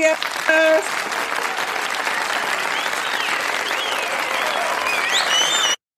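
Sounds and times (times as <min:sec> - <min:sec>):
speech: 0:00.0 - 0:01.4
audience applause: 0:00.0 - 0:05.8
faint audience whistles: 0:02.5 - 0:05.8.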